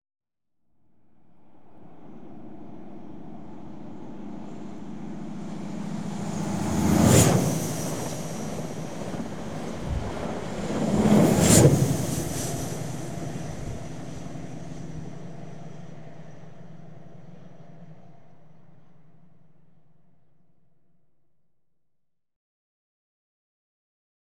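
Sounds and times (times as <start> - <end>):
Midland Electric train exterior: 3.0 - 15.6.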